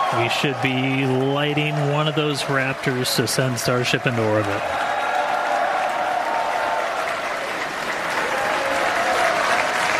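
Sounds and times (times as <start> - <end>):
large crowd applauding and cheering: 0.0 - 9.9
speech: 0.1 - 4.9.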